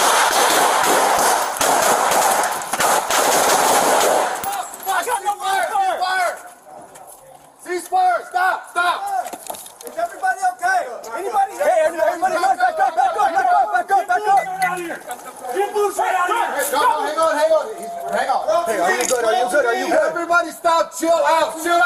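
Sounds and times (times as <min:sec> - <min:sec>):
rapid gunfire during a police emergency entry: 0:00.0 - 0:04.5
pistol fired until empty: 0:00.0 - 0:04.7
people talking: 0:04.4 - 0:21.8.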